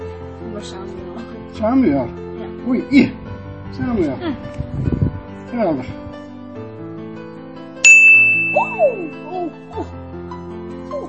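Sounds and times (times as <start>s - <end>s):
speech: 0.6s - 6.0s, 8.5s - 9.9s
phone message notification chime: 7.9s - 9.3s.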